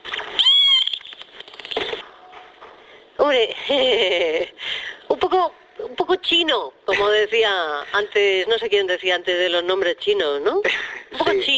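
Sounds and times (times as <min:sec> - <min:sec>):
mother dolphin whistling to her calf: 0:00.4 - 0:01.2
speech: 0:03.3 - 0:04.6, 0:05.3 - 0:11.5.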